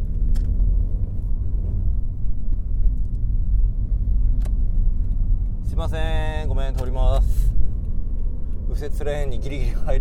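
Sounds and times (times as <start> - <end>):
car moving through traffic with road and engine noise: 0.0 - 9.9
speech: 5.8 - 7.6, 8.8 - 9.9.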